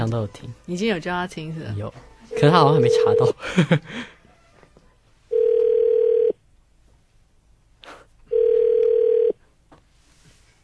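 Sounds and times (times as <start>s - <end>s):
speech: 0.0s - 4.2s
telephone ringback tones during an outgoing call: 2.3s - 3.3s, 5.3s - 6.4s, 8.3s - 9.4s.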